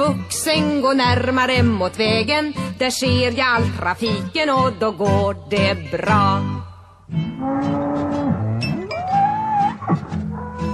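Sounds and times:
speech: 0.1s - 6.5s, 7.1s - 7.9s
cow mooing in the countryside by a road: 7.3s - 10.7s.

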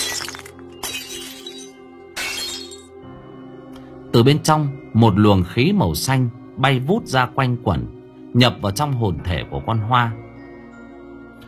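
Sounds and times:
glass mirror shattering, struck by a flicked coin: 0.0s - 2.9s
tinkling shards of broken glass: 0.0s - 2.9s
speech: 4.2s - 10.3s.

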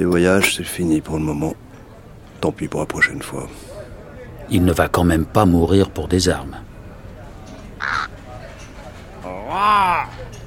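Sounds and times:
speech: 0.0s - 1.6s, 2.4s - 3.7s, 4.5s - 6.7s, 9.5s - 10.2s
crow cawing in Marseille: 7.8s - 8.2s.

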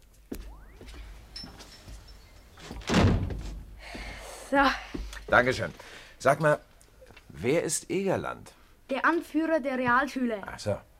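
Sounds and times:
quiet shuffling: 0.0s - 7.4s
door being pushed shut with a heavy thud: 2.6s - 3.8s
speech: 4.5s - 6.7s, 7.4s - 10.9s.

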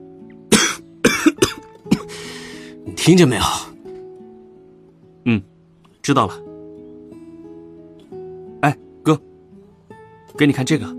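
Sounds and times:
man coughing while clearing his throat: 0.5s - 2.3s
speech: 3.0s - 3.7s, 5.2s - 5.5s, 6.1s - 6.5s, 8.6s - 9.3s, 10.4s - 10.9s.

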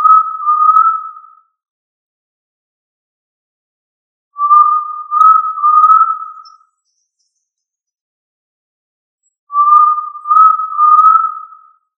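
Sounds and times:
quail whistle: 0.0s - 1.2s, 4.4s - 6.6s, 9.5s - 11.7s.

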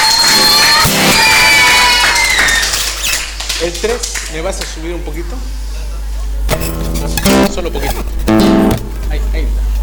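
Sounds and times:
crowd cheering and whooping at an anniversary celebration: 0.0s - 3.1s
audience applause: 0.0s - 4.7s
speech: 3.8s - 5.7s, 6.6s - 9.7s.

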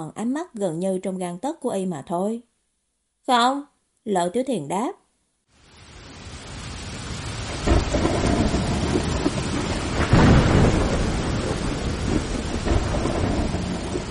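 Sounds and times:
speech: 0.0s - 2.5s, 3.2s - 5.0s
heavy rain in a night thunderstorm: 5.5s - 14.1s
deep thunder rumbles in a night thunderstorm: 5.6s - 14.1s.

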